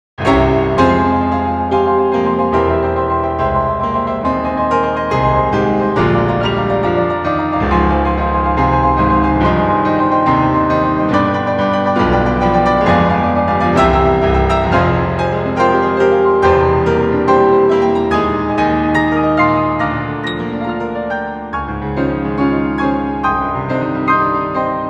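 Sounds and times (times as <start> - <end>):
piano duo playing: 0.2 - 24.8.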